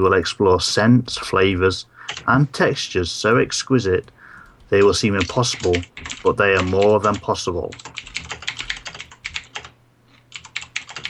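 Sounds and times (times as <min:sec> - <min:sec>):
speech: 0:00.0 - 0:07.9
crisp clacking of keys on a mechanical keyboard: 0:02.1 - 0:02.3, 0:04.4 - 0:11.0.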